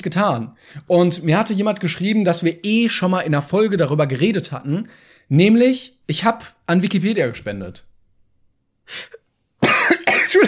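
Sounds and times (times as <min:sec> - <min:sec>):
speech: 0:00.0 - 0:07.9, 0:08.9 - 0:09.2
person coughing: 0:09.6 - 0:10.4.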